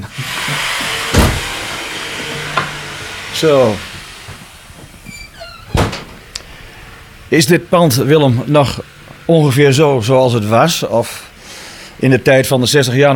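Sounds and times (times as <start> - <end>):
front door creaking open: 0.0 - 10.0
power saw motor whining: 0.0 - 13.1
heavy wooden front door thud and rattle: 1.0 - 1.8, 4.0 - 6.2
speech: 3.4 - 3.9, 7.3 - 11.3, 12.0 - 13.1.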